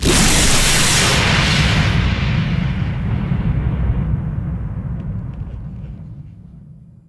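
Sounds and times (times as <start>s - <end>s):
lightning strike impact: 0.0s - 5.2s.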